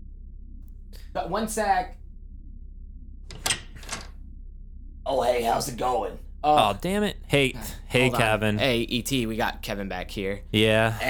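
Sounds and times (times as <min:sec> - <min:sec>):
speech: 0:01.2 - 0:02.0, 0:05.1 - 0:11.0
rattling clunks from a door latch and handle: 0:03.3 - 0:04.1.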